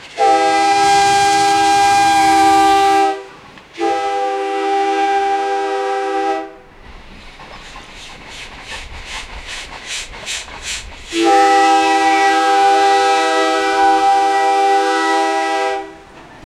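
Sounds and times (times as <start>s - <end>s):
train steam whistle: 0.0s - 6.9s, 11.1s - 16.4s.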